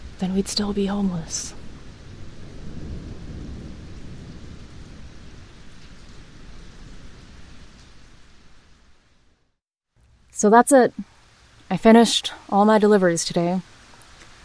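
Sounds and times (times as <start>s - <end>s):
deep rumble of thunder: 0.0s - 9.4s
heavy rain pouring in a thunderstorm: 0.0s - 9.4s, 10.4s - 14.4s
speech: 0.2s - 1.6s, 10.4s - 11.1s, 11.7s - 13.7s.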